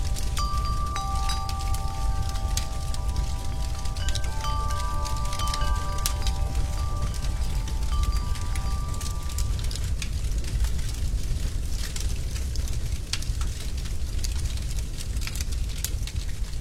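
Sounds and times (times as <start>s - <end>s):
soft wind chime tones: 0.0s - 10.0s
fireplace fire crackling: 0.0s - 16.5s.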